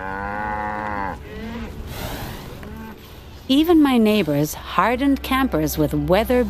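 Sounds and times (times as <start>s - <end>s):
Highland cow mooing: 0.0s - 1.8s, 2.6s - 3.1s
Highland cow low grunt: 0.0s - 3.2s
speech: 3.5s - 6.4s.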